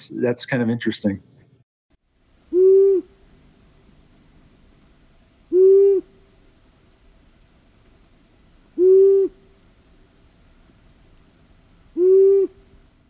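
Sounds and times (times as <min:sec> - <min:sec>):
speech: 0:00.0 - 0:01.3
long-eared owl giving low single hoots: 0:02.4 - 0:03.4, 0:05.5 - 0:06.4, 0:08.6 - 0:12.9.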